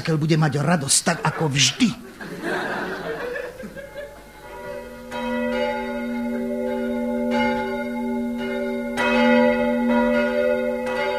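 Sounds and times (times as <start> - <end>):
speech: 0.0 - 2.9
church bells ringing for the New Year: 0.0 - 11.1
chuckling laughter: 1.1 - 4.3.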